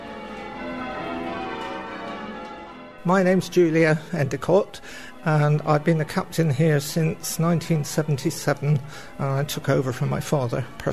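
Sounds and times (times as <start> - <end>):
bronze church bells ringing in an overlapping peal: 0.0 - 10.9
speech: 3.0 - 10.9.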